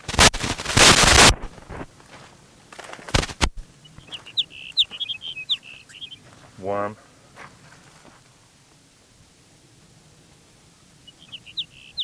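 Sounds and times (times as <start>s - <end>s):
loud broadband burst: 0.0s - 1.9s, 3.1s - 3.7s
sage sparrow song: 3.7s - 6.7s, 10.7s - 12.0s
speech: 6.6s - 7.0s.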